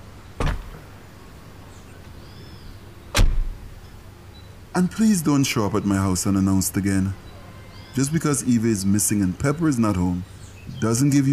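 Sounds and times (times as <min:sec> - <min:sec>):
car door thuds: 0:00.4 - 0:00.8, 0:03.1 - 0:03.6
speech: 0:04.8 - 0:07.2, 0:08.0 - 0:11.3.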